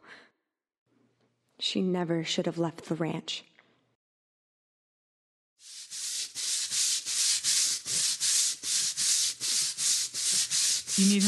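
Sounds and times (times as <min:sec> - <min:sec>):
speech: 0:01.6 - 0:03.5, 0:11.0 - 0:11.2
brush scrubbing soapy concrete to loosen grime: 0:05.6 - 0:11.2.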